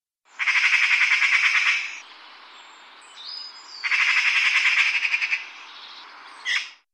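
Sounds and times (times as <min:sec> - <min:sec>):
magpie: 0:00.4 - 0:02.0, 0:03.8 - 0:05.6, 0:06.4 - 0:06.8.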